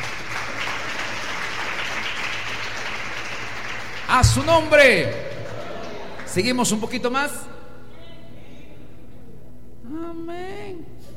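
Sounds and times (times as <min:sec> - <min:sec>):
large crowd applauding: 0:00.0 - 0:06.7
speech: 0:04.1 - 0:05.3, 0:06.3 - 0:07.5.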